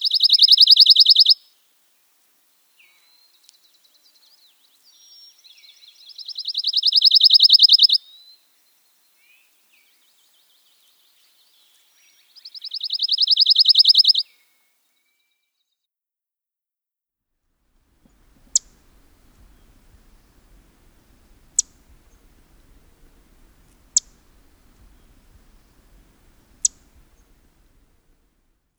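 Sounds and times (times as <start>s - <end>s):
pine warbler trill: 0.0s - 1.5s, 2.8s - 8.4s, 9.1s - 14.3s, 18.0s - 28.5s
background hiss: 0.0s - 15.1s, 17.6s - 28.7s.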